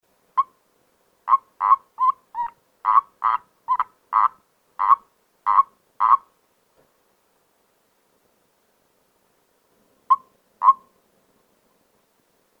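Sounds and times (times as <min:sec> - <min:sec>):
common toad calling with pulsed croaking notes: 0:01.3 - 0:06.3, 0:10.1 - 0:10.9.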